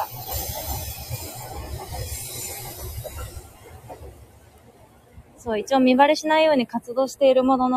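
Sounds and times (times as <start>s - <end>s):
train passing: 0.0s - 7.7s
speech: 5.4s - 7.7s.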